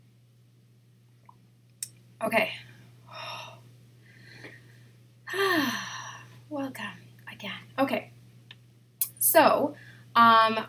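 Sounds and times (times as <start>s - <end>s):
low steady hum: 0.0s - 10.6s
speech: 2.2s - 2.7s, 6.5s - 8.1s, 9.3s - 10.6s
person gasping for breath after drinking water: 5.3s - 6.3s.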